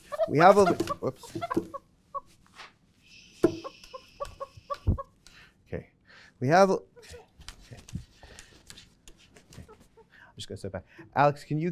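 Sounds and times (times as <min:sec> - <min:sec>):
rooster clucking: 0:00.0 - 0:02.3, 0:03.2 - 0:05.2
speech: 0:00.3 - 0:01.8, 0:06.4 - 0:06.9, 0:10.5 - 0:11.7.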